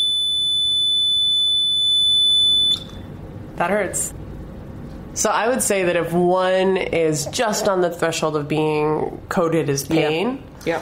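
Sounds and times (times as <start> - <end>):
loud high-pitched electronic beep from a heat stimulator used in pain testing: 0.0 - 3.0
speech: 3.6 - 4.2, 5.2 - 10.8.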